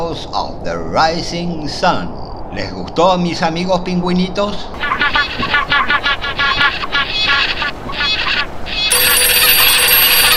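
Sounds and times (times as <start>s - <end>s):
speech: 0.1s - 9.4s
telephone ringing with electronic ringtone: 8.7s - 10.3s.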